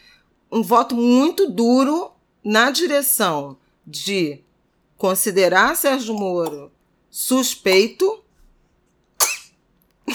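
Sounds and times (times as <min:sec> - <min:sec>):
speech: 0:00.5 - 0:08.2
person sneezing: 0:09.2 - 0:09.5.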